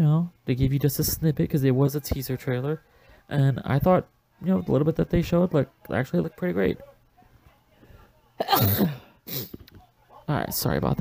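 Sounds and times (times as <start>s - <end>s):
speech: 0.0s - 6.9s, 8.4s - 9.4s, 10.3s - 10.9s
person with a cold sneezing: 8.4s - 9.6s.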